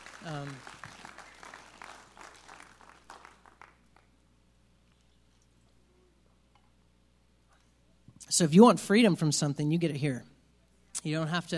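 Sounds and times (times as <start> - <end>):
church audience applauding: 0.0 - 4.1
speech: 0.2 - 0.8, 8.3 - 10.3, 11.0 - 11.5.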